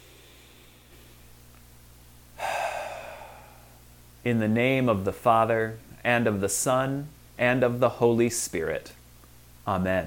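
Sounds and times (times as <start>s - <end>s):
deep breath: 0.0s - 1.3s, 2.4s - 3.9s
speech: 4.2s - 9.0s, 9.6s - 10.0s.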